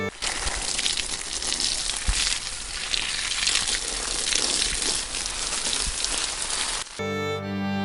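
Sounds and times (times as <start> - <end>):
liquid pouring and splattering over papers: 0.1 - 7.0
humming tone: 7.0 - 7.8.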